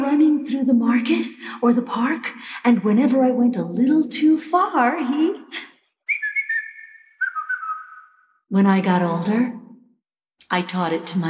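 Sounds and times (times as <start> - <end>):
speech: 0.0 - 5.7, 8.5 - 9.6, 10.5 - 11.2
person whistling a family call: 6.1 - 8.3.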